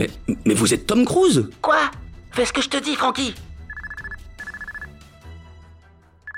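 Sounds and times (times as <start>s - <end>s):
speech: 0.0s - 3.5s
phone ringing with a shrill electronic trill: 3.7s - 4.9s.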